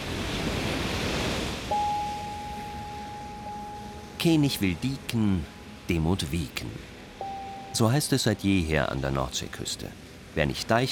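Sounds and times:
ocean waves washing ashore: 0.0s - 10.9s
thin steady high-pitched tone: 1.7s - 8.3s
speech: 4.2s - 6.9s, 7.7s - 10.9s.

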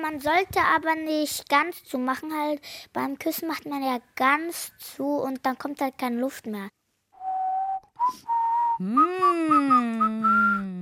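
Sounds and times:
speech: 0.0s - 6.8s, 8.1s - 10.4s
person whistling through pursed lips: 7.2s - 10.8s.

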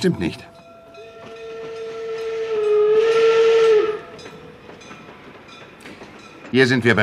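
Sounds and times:
speech: 0.0s - 0.6s, 6.5s - 7.0s
steam train whistle at Eifort railway station: 1.0s - 4.3s.

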